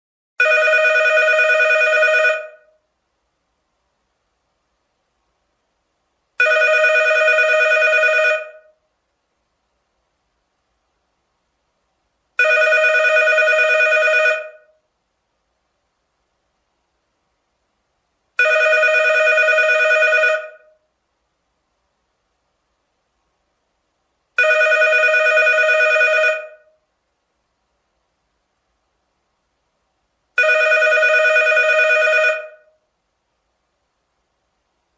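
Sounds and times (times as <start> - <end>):
phone ringing in an office: 0.4 - 2.7, 6.4 - 8.7, 12.4 - 14.7, 18.4 - 20.7, 24.4 - 26.7, 30.4 - 32.7.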